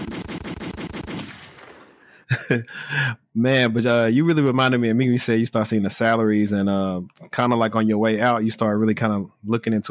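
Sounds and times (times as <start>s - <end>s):
machine gun fire: 0.0s - 1.9s
gunfire echo: 0.0s - 2.0s
laughter: 2.3s - 3.2s
speech: 2.3s - 9.9s.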